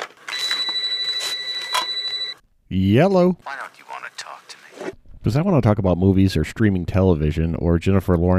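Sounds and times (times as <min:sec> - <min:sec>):
telephone ringing with a piercing electronic tone: 0:00.3 - 0:02.4
speech: 0:02.7 - 0:03.6, 0:05.2 - 0:08.3.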